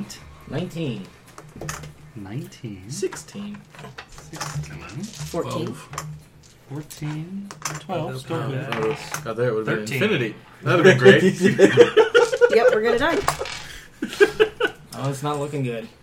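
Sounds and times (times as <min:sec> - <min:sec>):
speech: 0:00.0 - 0:13.4, 0:15.0 - 0:16.0
players chatting and reacting: 0:02.2 - 0:03.6, 0:04.4 - 0:06.0, 0:06.7 - 0:13.3, 0:14.9 - 0:15.9
dice rattling and clattering across a hard surface: 0:03.9 - 0:05.8, 0:12.1 - 0:13.7
laughter: 0:10.6 - 0:14.9.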